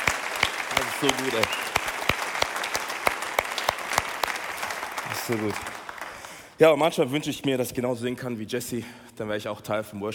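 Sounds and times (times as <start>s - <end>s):
audience applause: 0.0s - 6.6s
speech: 1.0s - 1.7s, 5.1s - 5.8s, 6.6s - 10.1s.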